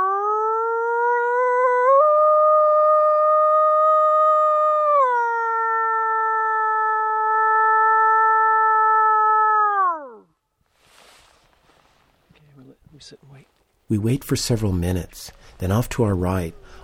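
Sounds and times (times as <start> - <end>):
man with cupped hands imitating a wolf howl from a forest ridge: 0.0 - 10.3
quiet breathy rustling: 10.6 - 12.6, 15.2 - 15.8, 16.5 - 16.8
speech: 13.9 - 16.8.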